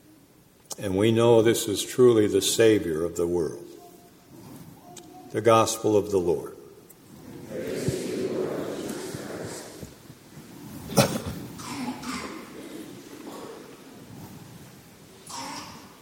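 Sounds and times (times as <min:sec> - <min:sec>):
speech: 0:00.8 - 0:03.8, 0:05.3 - 0:06.6
faint shuffling: 0:03.7 - 0:05.7, 0:07.0 - 0:15.2
single sharp cough: 0:10.9 - 0:12.6.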